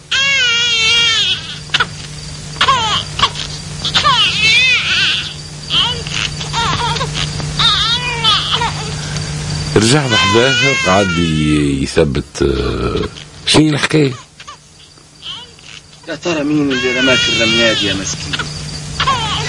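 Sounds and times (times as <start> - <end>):
low steady hum: 0.0 - 19.4
baby crying with high wavering wails and sobs: 0.1 - 2.0, 2.6 - 9.0, 9.8 - 11.4, 15.2 - 19.4
speech: 9.8 - 14.2, 16.1 - 18.5.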